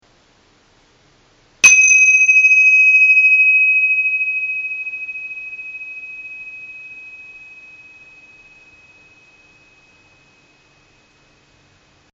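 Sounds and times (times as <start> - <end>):
Tibetan cymbals: 1.6 - 11.2.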